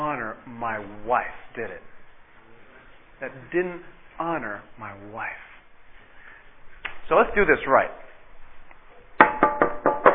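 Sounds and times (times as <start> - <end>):
speech: 0.6 - 2.0, 3.2 - 5.5, 7.1 - 8.0
firm knocking on a front door: 9.2 - 10.1.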